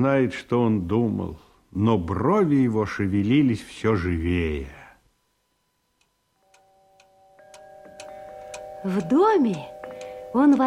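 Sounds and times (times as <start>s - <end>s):
speech: 0.0s - 4.8s, 8.8s - 9.7s, 10.3s - 10.6s
faint sustained ringing tone: 5.2s - 10.6s
clock ticking: 6.0s - 10.6s.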